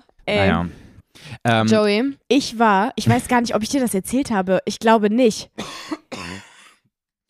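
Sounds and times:
speech: 0:00.3 - 0:00.8, 0:01.5 - 0:05.9
harsh barking cough: 0:05.6 - 0:06.5.

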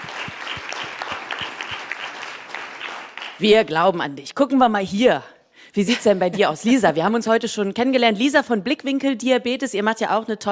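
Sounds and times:
audience applause: 0:00.0 - 0:03.4
speech: 0:03.4 - 0:10.4.

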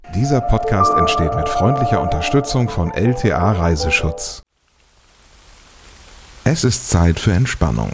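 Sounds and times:
speech: 0:00.2 - 0:04.4, 0:06.4 - 0:07.9
steady rain pattering on leaves and ground in the Teutoburg Forest: 0:04.5 - 0:07.9.

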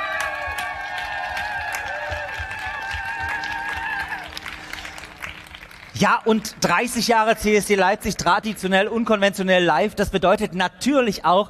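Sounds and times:
outdoor crowd applauding at a pride event: 0:00.0 - 0:09.2
speech: 0:06.0 - 0:11.4.

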